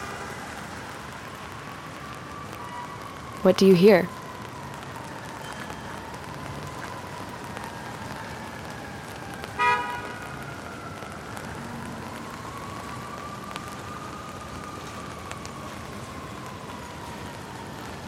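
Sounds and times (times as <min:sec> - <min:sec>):
steady rain pattering on an umbrella at a New York street corner: 0:00.0 - 0:18.0
speech: 0:03.4 - 0:04.2
faint car horn: 0:09.6 - 0:10.2.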